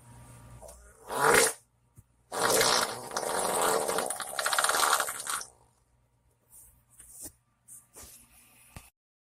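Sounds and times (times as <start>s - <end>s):
short fart: 1.0s - 1.6s, 2.3s - 5.4s.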